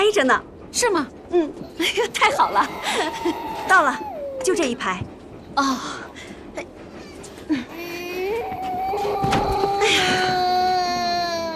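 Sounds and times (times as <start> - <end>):
speech: 0.1 - 6.7
infant crying and whimpering: 2.2 - 4.6, 7.8 - 11.5.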